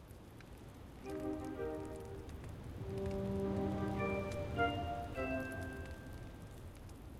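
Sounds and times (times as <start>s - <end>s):
splash loop: 1.0s - 6.3s.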